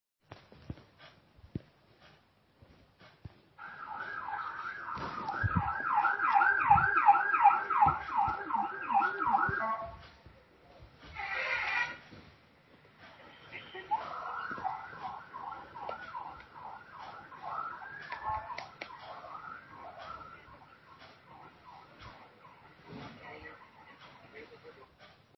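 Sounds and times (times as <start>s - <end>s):
ambulance: 3.6s - 10.2s, 13.2s - 24.5s.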